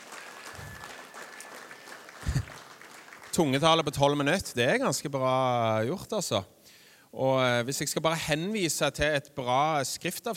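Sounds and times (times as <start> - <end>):
room full of people applauding: 0.0 - 4.6
speech: 3.4 - 10.3.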